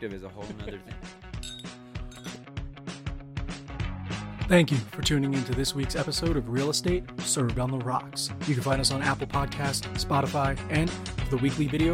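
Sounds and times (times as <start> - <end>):
speech: 0.0 - 1.4, 4.5 - 11.9
glasses clinking in a toast: 1.4 - 2.4.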